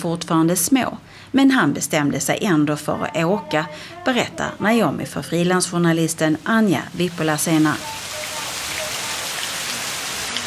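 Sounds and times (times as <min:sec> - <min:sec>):
speech: 0:00.0 - 0:08.1
heavy rain during a sudden downpour in Sri Lanka: 0:05.4 - 0:10.4.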